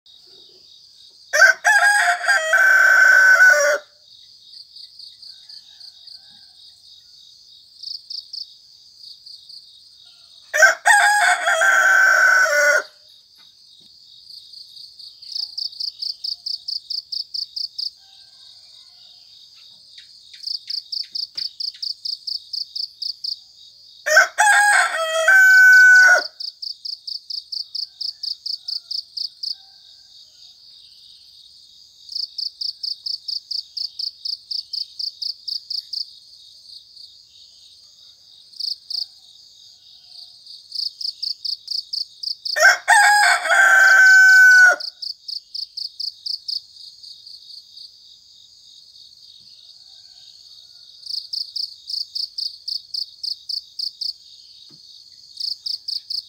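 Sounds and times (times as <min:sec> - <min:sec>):
rooster crowing: 0:01.3 - 0:04.0, 0:05.2 - 0:07.2, 0:10.0 - 0:13.1, 0:17.9 - 0:19.5, 0:24.0 - 0:26.4, 0:27.8 - 0:30.7, 0:42.6 - 0:45.0, 0:49.5 - 0:51.3.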